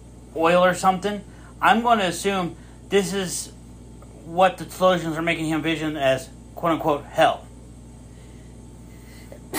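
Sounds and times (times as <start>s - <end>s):
low steady hum: 0.0s - 9.5s
speech: 0.4s - 3.6s, 4.3s - 7.4s
single abrupt loud sneeze: 9.4s - 9.5s.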